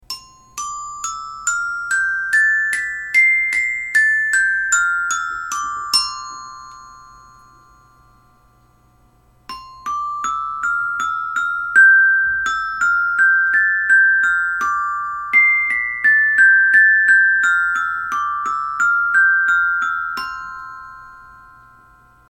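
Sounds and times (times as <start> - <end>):
open diatonic eight-note metallophone: 0.0 - 22.2.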